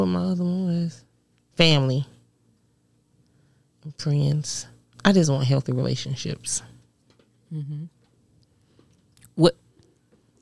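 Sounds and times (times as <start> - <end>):
speech: 0.0 - 2.1, 3.9 - 6.7, 7.5 - 8.0, 9.4 - 9.6
low murmur of a voice: 7.5 - 8.0.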